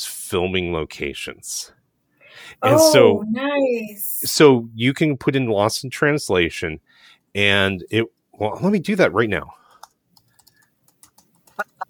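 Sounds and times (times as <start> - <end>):
speech: 0.3 - 1.8, 2.4 - 9.6
computer keyboard keys tapping and clicking: 9.8 - 11.8.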